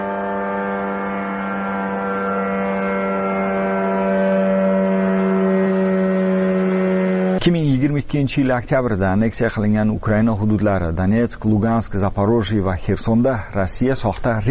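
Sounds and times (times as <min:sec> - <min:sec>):
Shahed drone engine rattling and buzzing: 0:00.0 - 0:07.5
speech: 0:07.4 - 0:14.4.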